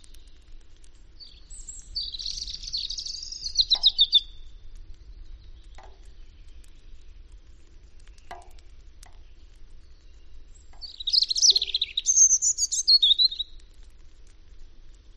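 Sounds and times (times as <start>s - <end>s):
faint clicks: 0.0s - 15.1s
European robin song with high tinkling warbled phrase: 1.2s - 4.4s, 10.8s - 13.4s.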